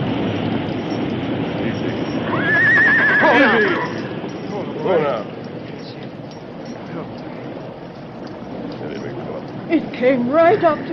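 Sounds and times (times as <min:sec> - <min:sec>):
rushing hissing noise: 0:00.0 - 0:10.9
horse whinnying and neighing standing in floodwater: 0:02.2 - 0:04.2
speech: 0:10.0 - 0:10.9.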